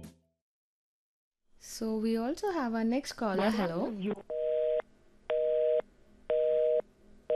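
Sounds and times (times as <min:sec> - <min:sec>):
speech: 0:01.6 - 0:04.4
telephone busy tone beeps after a dropped call: 0:04.3 - 0:07.3.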